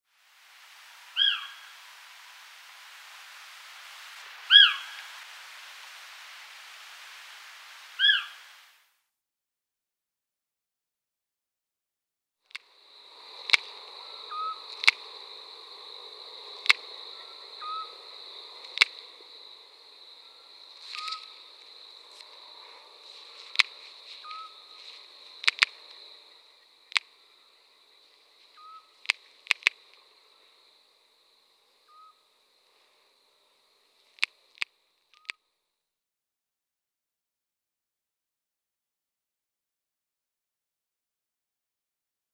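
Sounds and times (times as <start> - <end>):
European Scops-Owl calling: 0.5 - 8.8, 12.8 - 30.7, 31.8 - 32.4.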